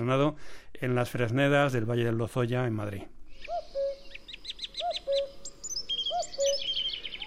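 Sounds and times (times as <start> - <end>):
speech: 0.0 - 3.7
soft background of other birds: 0.0 - 7.2
chaffinch singing in a spring ash woodland: 3.3 - 7.2.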